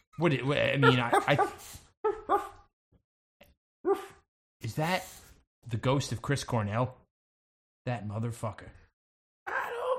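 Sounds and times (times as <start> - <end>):
speech: 0.2 - 2.5, 4.8 - 7.0, 7.9 - 8.8
dogs barking: 0.8 - 2.6.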